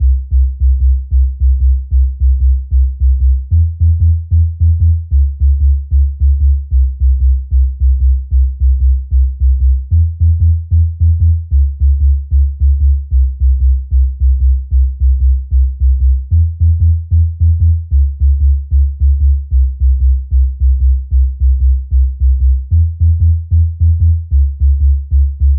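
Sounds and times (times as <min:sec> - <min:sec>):
sub bass: 0:00.0 - 0:25.5.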